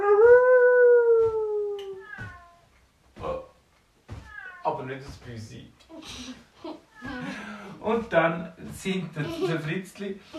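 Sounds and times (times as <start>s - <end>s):
person imitating a wolf howling: 0.0s - 2.0s
speech: 4.9s - 10.3s
laughter: 9.2s - 9.7s.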